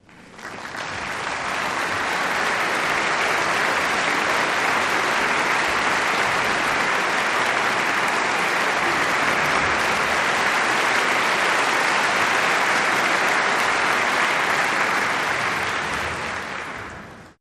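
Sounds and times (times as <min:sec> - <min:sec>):
large crowd applauding indoors: 0:00.0 - 0:17.3.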